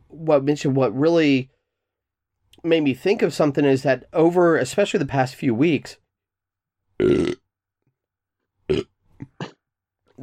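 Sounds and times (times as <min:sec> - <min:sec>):
speech: 0:00.2 - 0:01.6, 0:02.6 - 0:06.0, 0:07.0 - 0:07.4
short throaty burps: 0:07.0 - 0:07.5, 0:08.7 - 0:09.7.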